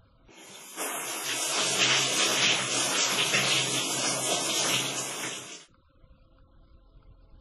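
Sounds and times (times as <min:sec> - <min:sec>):
steady hissing spray of shower water running: 0:00.3 - 0:05.7.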